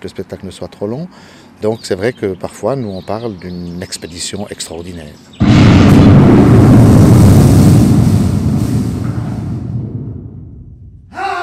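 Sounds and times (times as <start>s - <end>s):
speech: 0.0s - 5.4s
deep rumbling roar of an explosion: 5.4s - 11.0s
loud explosion: 5.4s - 11.1s.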